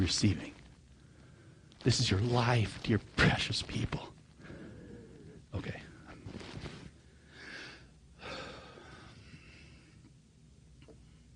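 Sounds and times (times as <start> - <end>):
speech: 0.0 - 0.6, 1.8 - 4.1, 5.5 - 5.8
person breathing heavily with labored gasping breaths: 4.4 - 5.5, 7.0 - 10.1.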